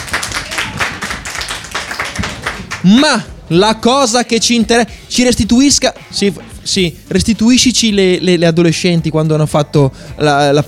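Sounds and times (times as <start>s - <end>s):
audience applauding on a quiz show after a correct answer: 0.0s - 3.0s
speech: 2.8s - 10.6s.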